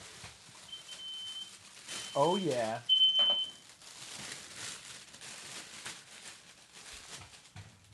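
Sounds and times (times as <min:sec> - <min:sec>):
steady hiss: 0:00.0 - 0:03.6
smoke alarm high-pitched beeping: 0:00.7 - 0:03.6
speech: 0:02.2 - 0:02.9.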